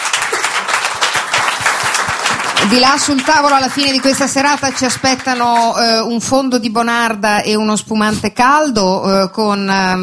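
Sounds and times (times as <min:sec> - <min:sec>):
audience applause at an evening event: 0:00.0 - 0:05.8
speech: 0:02.6 - 0:10.0.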